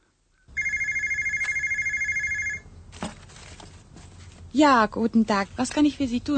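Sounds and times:
electronic telephone ringing in an office: 0.5s - 2.7s
speech: 4.6s - 6.3s.

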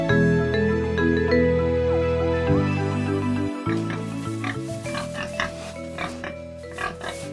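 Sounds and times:
music: 0.0s - 7.3s
pig grunting: 3.7s - 7.3s.

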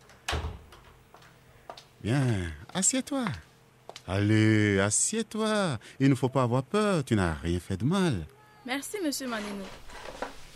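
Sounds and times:
door shutting with a solid thud: 0.3s - 0.8s
speech: 2.0s - 3.5s, 4.1s - 10.2s.

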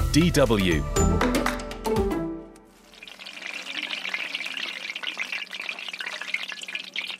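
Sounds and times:
speech: 0.1s - 1.3s
mandazi East African donuts deep frying in sizzling fat: 2.7s - 7.1s.

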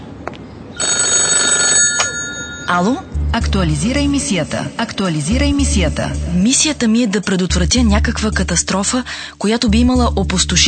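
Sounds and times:
telephone bell ringing: 0.8s - 3.1s
speech: 2.7s - 10.6s.

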